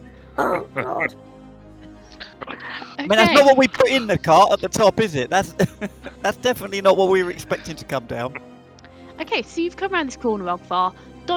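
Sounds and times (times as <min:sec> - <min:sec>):
voice mimicking a harsh rasping cough: 0:00.4 - 0:01.1, 0:02.2 - 0:06.5
speech: 0:00.4 - 0:01.4, 0:03.0 - 0:08.5, 0:09.2 - 0:11.3
laughter: 0:02.5 - 0:08.4.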